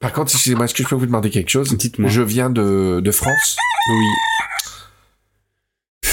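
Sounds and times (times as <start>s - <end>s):
speech: 0.0s - 4.6s
rooster crowing: 3.2s - 4.9s.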